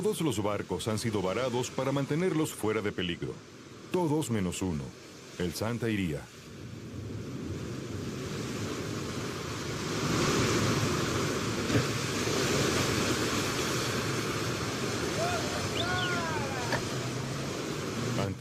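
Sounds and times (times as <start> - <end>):
speech: 0.0 - 6.4
rough Atlantic storm waves crashing against an island's poorly sheltered ports: 0.0 - 18.3
gusty wind: 6.3 - 18.3
brief high chirps: 15.6 - 16.4.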